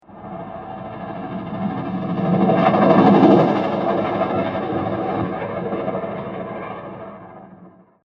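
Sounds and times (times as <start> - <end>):
horror ghost train transition: 0.0 - 5.7.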